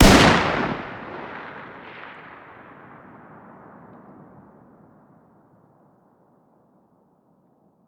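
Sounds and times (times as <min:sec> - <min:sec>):
distant fire: 0:00.0 - 0:06.0.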